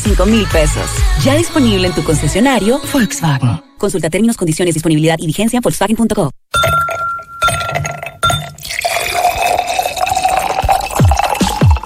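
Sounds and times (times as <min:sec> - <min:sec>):
speech: 0:00.1 - 0:06.7
ice clinking in a glass: 0:06.6 - 0:11.8
Mr. T soft drink poured into a glass full of ice: 0:06.9 - 0:11.8.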